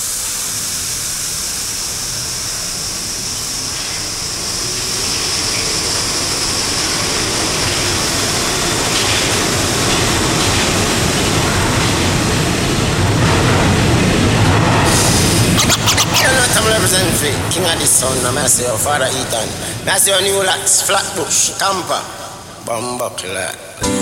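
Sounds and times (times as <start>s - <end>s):
Brooklyn-bound subway express train rumbling at speed: 0.0s - 24.0s
speech: 17.0s - 24.0s.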